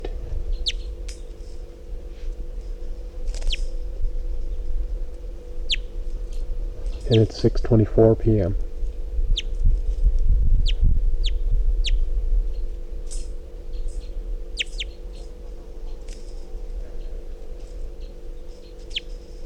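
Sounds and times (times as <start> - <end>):
steady low hum: 0.0 - 19.4
wild bird chirping calls: 0.5 - 1.0, 5.6 - 6.0, 9.3 - 9.6, 10.6 - 12.0, 13.7 - 15.3, 18.0 - 19.2
speech: 7.1 - 8.7.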